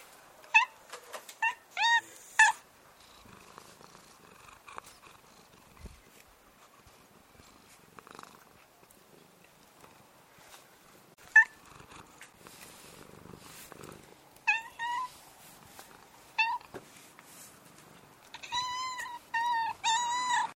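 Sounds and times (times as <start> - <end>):
black cat meowing: 1.4 - 2.6, 14.4 - 15.2, 16.4 - 16.7, 18.3 - 20.5
black cat purring: 2.2 - 10.6, 11.3 - 16.4
black cat chirping trills: 11.3 - 11.6, 14.4 - 15.2, 18.3 - 20.5.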